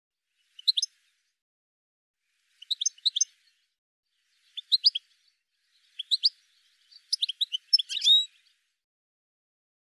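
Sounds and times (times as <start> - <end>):
bird giving high clipped chirps: 0.4 - 1.2, 2.4 - 8.7.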